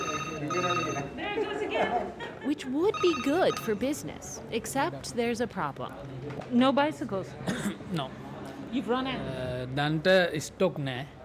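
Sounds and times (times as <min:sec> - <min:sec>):
telephone ringing with warbling electronic tone: 0:00.0 - 0:01.2, 0:02.8 - 0:04.0
faint voices murmuring: 0:00.0 - 0:09.7
speech: 0:00.5 - 0:11.2.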